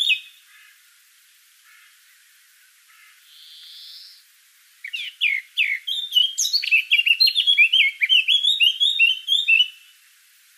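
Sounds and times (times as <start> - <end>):
Eurasian blackcap Sylvia atricapilla warbling song: 0.0 - 0.5, 3.3 - 4.2, 4.8 - 10.0.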